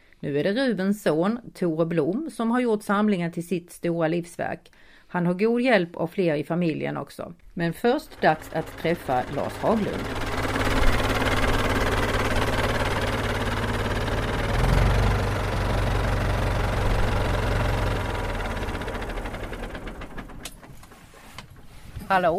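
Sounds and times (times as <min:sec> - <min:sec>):
speech: 0:00.2 - 0:10.3, 0:22.1 - 0:22.3
650 tractor engine from 1984 idling: 0:07.8 - 0:22.3.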